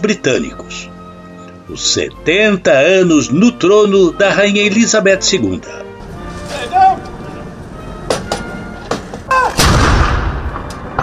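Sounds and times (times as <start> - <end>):
speech: 0.0 - 0.9, 1.7 - 5.8
murmuring crowd of onlookers: 5.7 - 8.7
ceremonial cannon salute fired by Royal Horse Artillery in London: 9.6 - 11.0.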